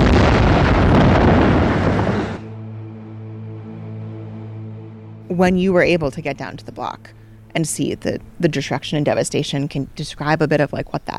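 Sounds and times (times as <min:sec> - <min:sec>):
explosion of a satchel dropped from a helicopter: 0:00.0 - 0:02.6
speech: 0:05.4 - 0:11.1.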